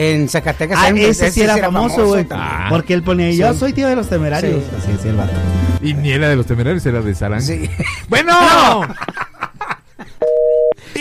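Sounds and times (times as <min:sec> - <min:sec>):
speech: 0:00.0 - 0:09.2
people laughing: 0:07.5 - 0:10.2
telephone line tone in studio booth: 0:10.2 - 0:10.8.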